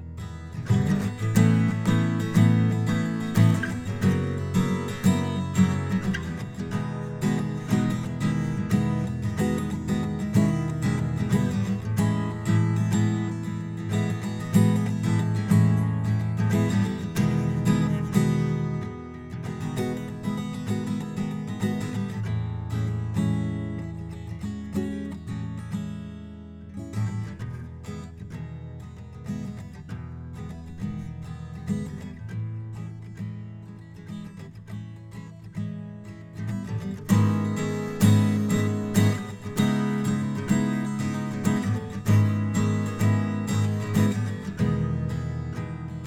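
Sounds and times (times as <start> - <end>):
acoustic guitar recorded through an audio interface: 0.0 - 46.0.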